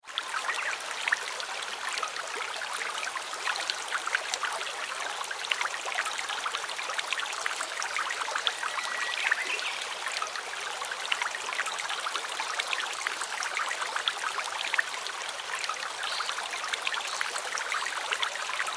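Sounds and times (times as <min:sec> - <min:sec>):
river water flowing gently and calmly: 0:00.0 - 0:18.7.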